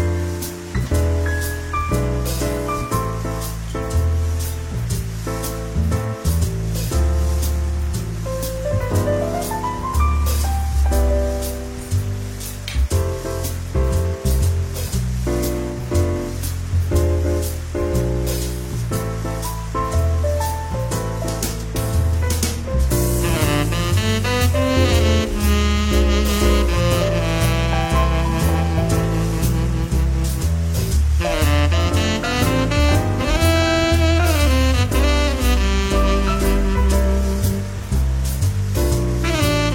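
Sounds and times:
jazz band with bass, melodic lines and drums: 0:00.0 - 0:39.7.

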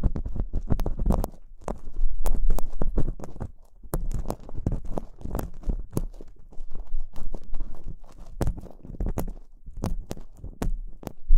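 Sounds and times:
ear cleaning scraping, scratching and sharp clicks: 0:00.0 - 0:11.3
soft rubbing: 0:00.0 - 0:11.3.

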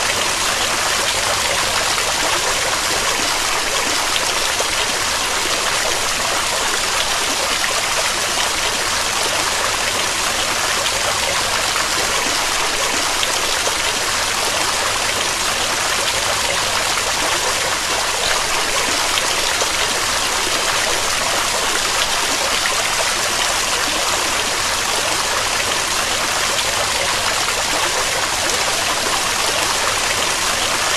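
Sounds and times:
running water: 0:00.0 - 0:30.9.

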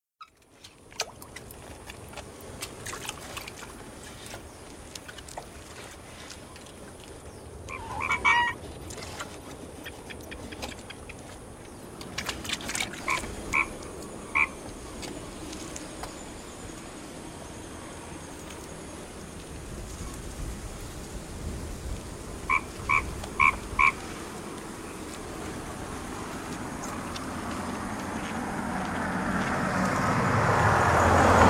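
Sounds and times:
vehicle approaching: 0:07.0 - 0:31.4
frogs croaking in a field: 0:07.2 - 0:20.2, 0:22.2 - 0:31.4.

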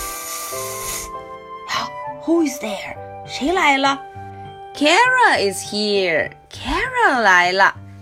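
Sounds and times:
snake hissing: 0:00.0 - 0:01.4
speech: 0:02.3 - 0:04.2, 0:04.8 - 0:07.8.

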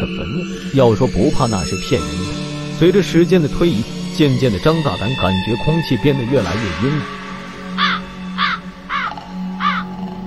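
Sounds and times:
speech: 0:00.0 - 0:07.2
crow cawing harshly: 0:07.6 - 0:10.0.

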